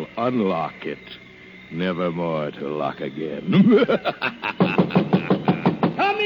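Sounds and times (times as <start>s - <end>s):
speech: 0.1s - 5.1s
laughter: 3.4s - 6.0s
resonant knocks on a door: 4.6s - 6.1s.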